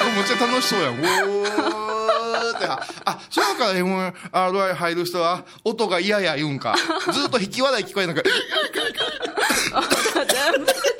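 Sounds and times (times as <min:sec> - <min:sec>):
laughter: 0:00.0 - 0:03.6, 0:06.7 - 0:10.9
speech: 0:00.2 - 0:10.9
person choking and coughing: 0:09.4 - 0:10.9.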